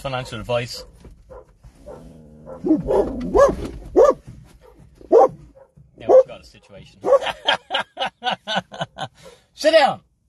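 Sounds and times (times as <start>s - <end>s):
speech: 0.0s - 1.0s, 2.5s - 3.9s, 6.4s - 8.7s, 9.6s - 10.1s
dog barking outdoors: 0.1s - 7.4s
dog whining: 1.3s - 4.2s
laughter: 7.0s - 9.2s.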